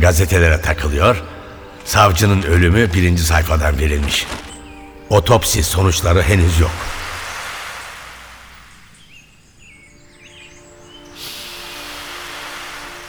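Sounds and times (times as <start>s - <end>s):
speech: 0.0s - 4.5s, 5.1s - 7.0s
sea waves breaking on shore: 4.0s - 9.5s, 11.0s - 13.0s.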